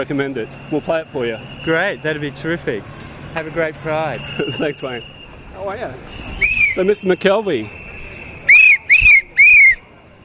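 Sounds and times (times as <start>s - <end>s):
speech: 0.0s - 7.8s
man whistling from his throat at a Pride march: 6.3s - 6.8s, 7.7s - 9.8s.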